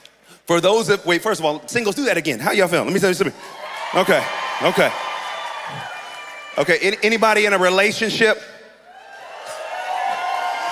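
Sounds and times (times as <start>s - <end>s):
speech: 0.5s - 5.0s, 5.7s - 5.9s, 6.6s - 8.6s
audience yelling and cheering: 3.4s - 8.1s, 8.8s - 10.6s.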